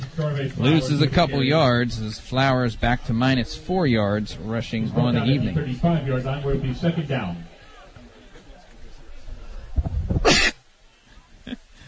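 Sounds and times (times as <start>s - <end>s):
speech: 0.2s - 7.5s
person sneezing: 10.2s - 10.6s.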